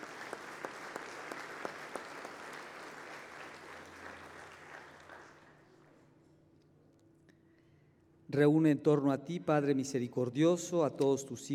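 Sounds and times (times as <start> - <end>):
audience applauding: 0.0 - 5.8
speech: 8.3 - 11.5.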